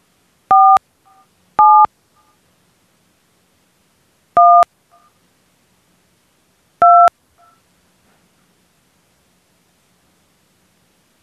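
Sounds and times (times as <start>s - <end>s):
telephone keypad DTMF dialing tones on an automated phone line: 0.5s - 1.9s, 4.4s - 4.6s, 6.8s - 7.6s.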